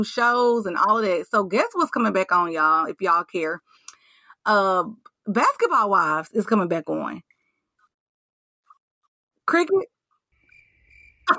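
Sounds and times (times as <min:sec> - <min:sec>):
speech: 0:00.0 - 0:03.8, 0:04.4 - 0:07.3, 0:09.5 - 0:09.9
cricket chirping: 0:10.4 - 0:11.3.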